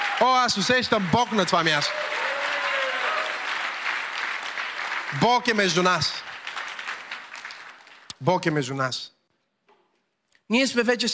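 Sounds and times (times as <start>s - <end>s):
congregation applauding at a religious gathering: 0.0s - 8.3s
speech: 0.2s - 2.4s, 5.1s - 6.3s, 8.2s - 9.2s, 10.5s - 11.1s.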